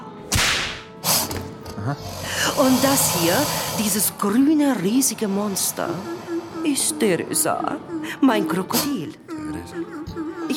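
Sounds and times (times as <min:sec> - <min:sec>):
whip swishing lash at a circus: 0:00.3 - 0:00.8
whip cracking at a circus: 0:00.3 - 0:00.9
speech: 0:01.8 - 0:10.5.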